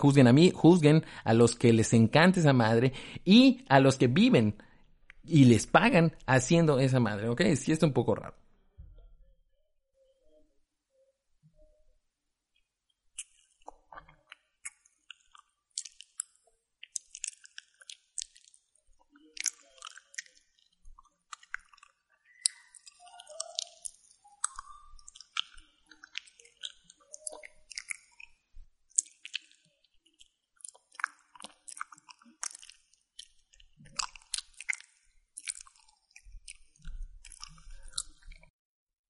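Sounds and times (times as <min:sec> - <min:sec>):
speech: 0:00.0 - 0:04.7, 0:05.3 - 0:08.4
chewing and crunching mouth sounds: 0:13.1 - 0:38.5.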